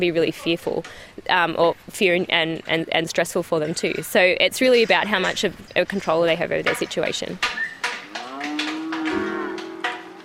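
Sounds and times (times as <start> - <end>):
speech: 0.0 - 7.7
cow mooing: 7.9 - 10.2.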